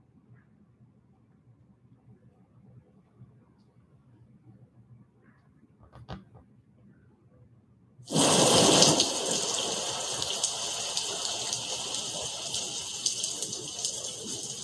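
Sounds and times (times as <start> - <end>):
recording of dense loud rain: 8.1 - 14.6.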